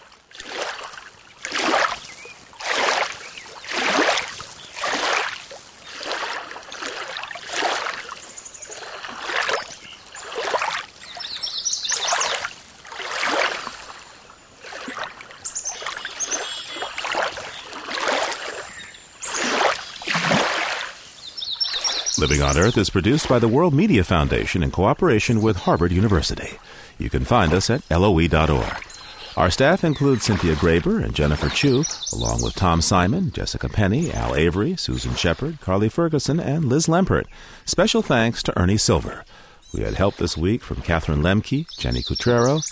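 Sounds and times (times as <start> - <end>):
small wind-driven waves lapping against the shore of Quabbin Reservoir in Massachusetts: 0.0 - 23.8, 26.4 - 32.1
speech: 22.2 - 28.8, 29.4 - 42.7.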